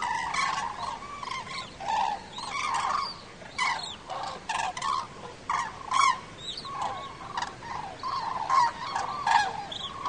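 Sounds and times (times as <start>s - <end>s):
migrating flock of Common cranes calling in autumn: 0.0s - 10.0s.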